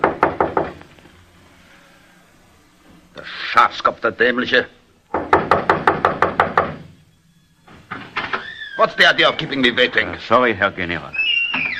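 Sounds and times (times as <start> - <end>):
knocking on the wooden door of a barber shop: 0.0 - 0.8, 5.1 - 6.9
speech: 3.6 - 4.8, 8.8 - 11.2.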